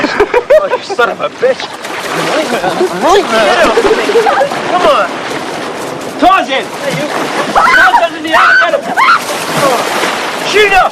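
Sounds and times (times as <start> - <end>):
people plunging into water: 0.0 - 10.9
speech: 0.9 - 5.4, 6.2 - 10.9
excited people shouting and laughing: 2.4 - 5.0, 7.2 - 9.9.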